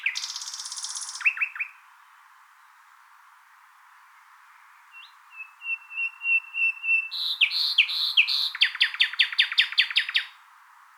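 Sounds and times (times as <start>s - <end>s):
common nightingale Luscinia megarhynchos singing: 0.0s - 1.9s, 4.9s - 10.4s.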